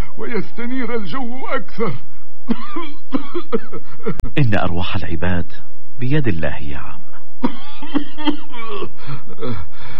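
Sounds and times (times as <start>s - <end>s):
speech: 0.2s - 9.9s
man coughing: 1.9s - 4.4s, 7.4s - 9.7s
heavy breathing: 8.9s - 9.9s.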